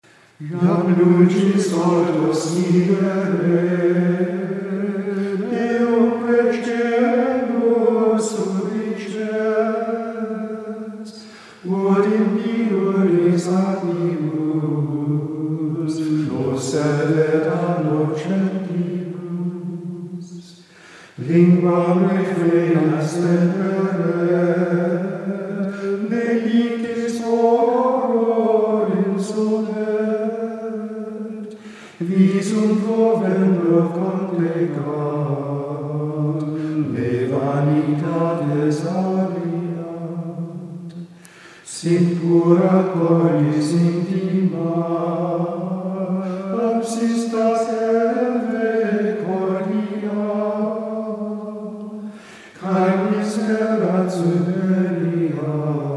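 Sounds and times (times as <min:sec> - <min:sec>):
Gregorian chant singing: 0:00.4 - 0:55.9.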